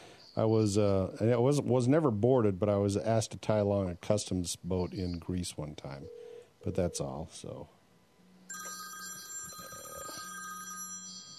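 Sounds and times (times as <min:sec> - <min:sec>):
speech: 0:00.4 - 0:07.8
telephone ringing with an electronic trill: 0:08.5 - 0:11.3.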